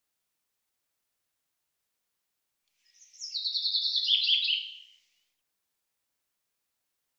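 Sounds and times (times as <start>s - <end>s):
common chaffinch song phrase: 2.8s - 5.2s.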